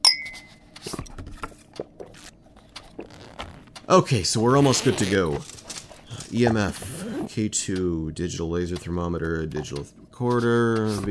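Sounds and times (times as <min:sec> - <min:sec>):
glasses clinking in a toast: 0:00.0 - 0:00.6
speech: 0:03.9 - 0:05.5, 0:06.3 - 0:11.1.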